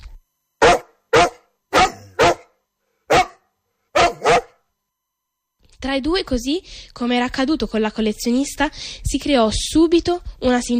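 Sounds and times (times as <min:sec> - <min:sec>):
stray dog barking in short sharp yelps: 0:00.6 - 0:04.6
speech: 0:05.8 - 0:10.7.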